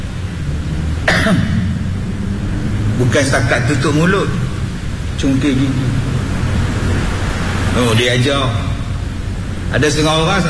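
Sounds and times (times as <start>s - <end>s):
low hum: 0.0s - 10.4s
cough or throat clearing: 1.0s - 1.6s
speech: 1.3s - 1.6s, 3.0s - 4.4s, 5.2s - 6.2s, 7.8s - 8.7s, 9.7s - 10.4s.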